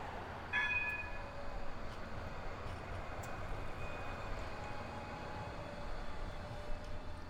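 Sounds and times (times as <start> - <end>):
tram rolling along city tracks: 0.0 - 7.2.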